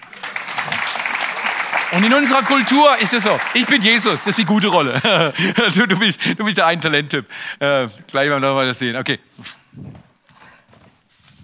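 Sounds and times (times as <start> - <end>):
crowd applauding: 0.0 - 6.0
speech: 1.9 - 10.0
laughter: 3.6 - 6.6.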